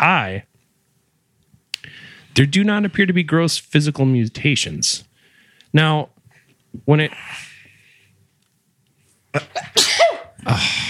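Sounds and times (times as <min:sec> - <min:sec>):
speech: 0:00.3 - 0:00.5, 0:02.4 - 0:05.1, 0:05.7 - 0:07.5, 0:09.3 - 0:10.8
person sneezing: 0:09.3 - 0:10.8.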